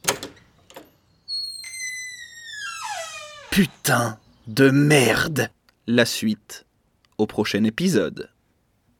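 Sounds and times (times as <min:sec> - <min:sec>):
door latch clicks: 0:00.0 - 0:00.9
door swinging open with a high creaking squeal: 0:00.0 - 0:04.1
speech: 0:03.6 - 0:08.3.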